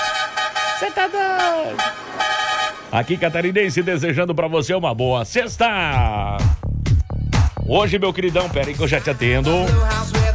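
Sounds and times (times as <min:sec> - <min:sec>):
busy noise: 0:00.0 - 0:04.2
truck horn honking: 0:00.0 - 0:04.4
speech: 0:00.8 - 0:02.3, 0:02.9 - 0:06.6, 0:07.7 - 0:10.2.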